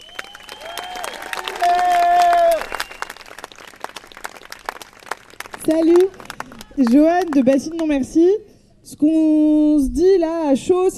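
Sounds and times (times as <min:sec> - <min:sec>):
loud sustained cheer or whistle: 0:00.0 - 0:03.3
crowd clapping: 0:00.0 - 0:08.0
speech: 0:05.7 - 0:06.2, 0:06.8 - 0:10.9.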